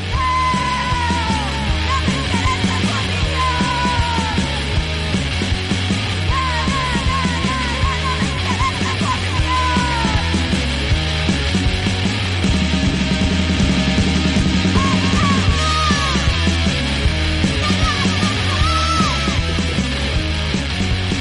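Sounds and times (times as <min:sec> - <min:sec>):
woman shouting punk vocals: 0:00.0 - 0:04.7, 0:06.3 - 0:10.4, 0:14.8 - 0:16.4, 0:17.6 - 0:19.5
distorted guitars: 0:00.0 - 0:21.2
loud driving punk song by a band of three women: 0:00.0 - 0:21.2
pounding drums: 0:00.6 - 0:21.2.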